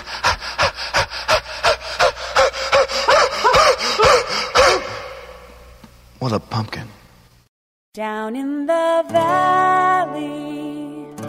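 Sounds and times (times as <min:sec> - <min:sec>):
voice imitating heavy panting breaths: 0:00.0 - 0:05.6
speech: 0:06.2 - 0:07.0, 0:08.0 - 0:10.8.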